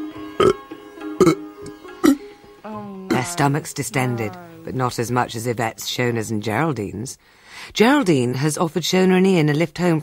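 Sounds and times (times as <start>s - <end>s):
faint steady musical tone: 0.0s - 7.3s
people burping gently at an Indian meal: 0.4s - 0.6s, 1.2s - 4.8s
speech: 3.2s - 10.0s.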